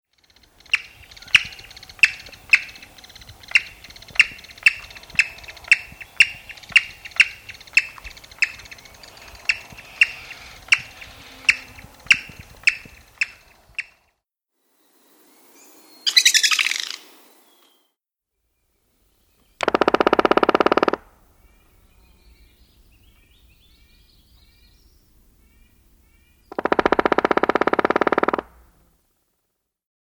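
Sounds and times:
Black-backed Woodpecker: 0.1s - 14.1s, 16.1s - 17.0s, 19.4s - 24.8s, 25.4s - 28.7s.

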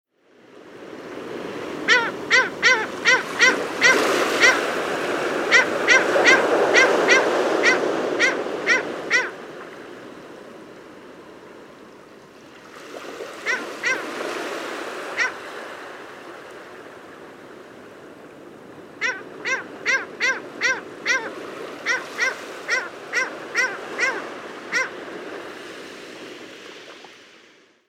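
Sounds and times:
Heermann's gull: 1.9s - 4.6s, 5.5s - 9.3s, 13.4s - 14.1s, 15.2s - 15.4s, 19.0s - 25.0s.

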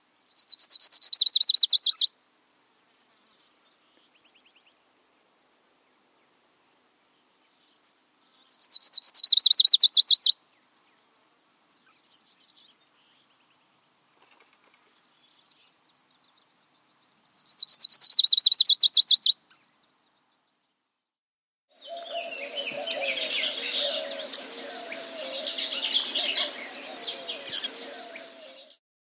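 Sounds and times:
Lucy's warbler singing: 0.2s - 4.8s, 7.1s - 11.0s, 14.8s - 20.8s, 21.8s - 28.8s.

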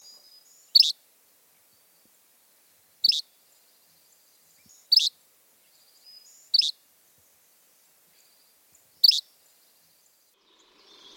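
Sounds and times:
yellow-bellied flycatcher calling: 0.0s - 1.0s, 3.0s - 3.4s, 4.2s - 5.2s, 5.8s - 6.8s, 8.1s - 11.1s.

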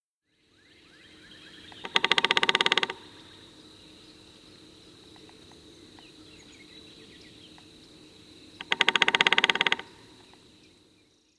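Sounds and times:
red-bellied woodpecker giving a rolling churr call: 1.6s - 3.4s, 8.6s - 10.4s.

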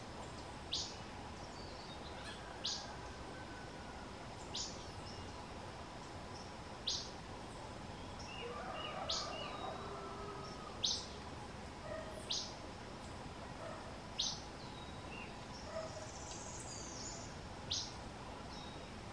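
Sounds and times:
Acadian Flycatcher Empidonax virescens calling: 0.2s - 11.3s, 11.9s - 19.0s.

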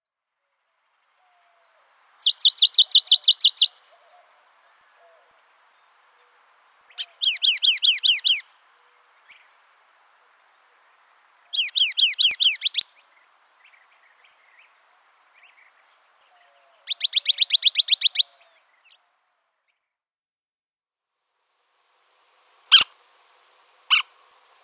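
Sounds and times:
Canyon Towhee calling: 1.3s - 5.4s, 6.9s - 8.6s, 11.5s - 14.8s, 15.4s - 19.0s, 22.7s - 23.0s, 23.9s - 24.2s.

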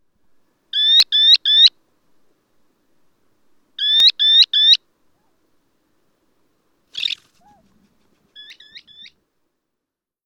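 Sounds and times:
Baird's sandpiper calling: 0.8s - 1.8s, 3.8s - 5.3s, 6.9s - 9.2s.

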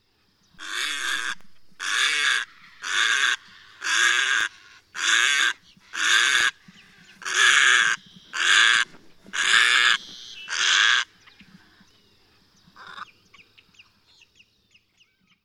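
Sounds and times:
Little Blue Heron calling: 0.6s - 11.4s.

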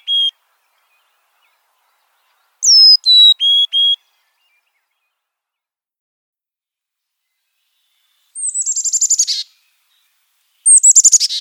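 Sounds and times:
Carolina chickadee calling with a high sliding whistle and buzzy dee notes: 0.0s - 0.4s, 2.6s - 4.1s, 8.4s - 9.6s, 10.7s - 11.3s.

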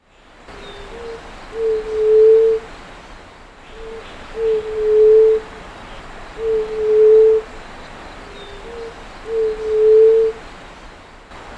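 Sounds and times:
white-tipped dove calling: 0.5s - 2.7s, 3.6s - 5.8s, 6.4s - 10.4s.

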